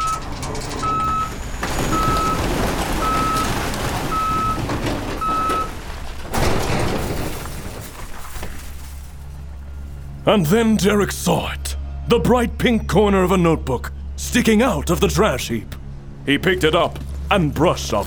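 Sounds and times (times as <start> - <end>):
garbage truck reversing beeps: 0.0 - 3.5, 4.1 - 4.6, 5.2 - 5.7
garbage truck engine rumble: 0.0 - 18.0
speech: 10.3 - 18.0.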